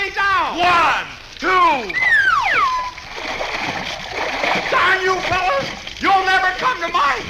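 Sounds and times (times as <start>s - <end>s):
churning, sloshing swimming pool water: 0.5s - 7.2s
person thrown into a swimming pool by a group of friends: 1.8s - 6.4s
descending whistle-like tone: 1.9s - 3.1s.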